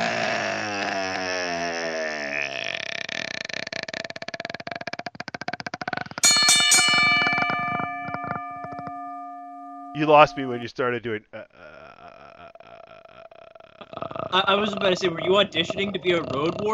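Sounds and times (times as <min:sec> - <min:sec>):
gurgling burp-like sound: 0:00.0 - 0:06.2, 0:12.1 - 0:16.7
fast rattling ring: 0:06.2 - 0:10.4
loud bright bell tone: 0:06.2 - 0:10.5
speech: 0:10.0 - 0:11.5, 0:14.3 - 0:16.7.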